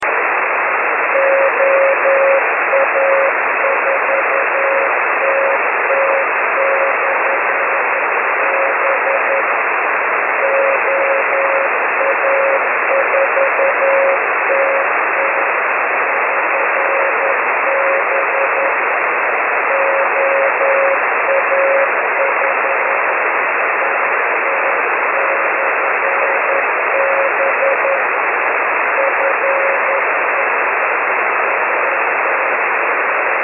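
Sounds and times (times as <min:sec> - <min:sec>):
6 meter band radio beacon signal: 0:00.0 - 0:33.4.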